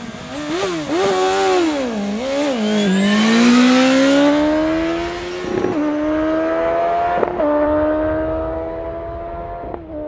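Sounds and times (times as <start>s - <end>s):
two roadster motorcycle engines revving and accelerating: 0.0s - 10.0s.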